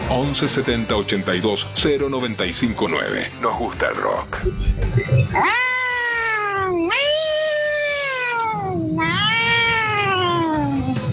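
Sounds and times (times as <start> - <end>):
speech: 0.2 - 5.8, 6.8 - 7.3
low rumbling background: 4.3 - 5.6
pet kitten meowing: 5.2 - 11.0.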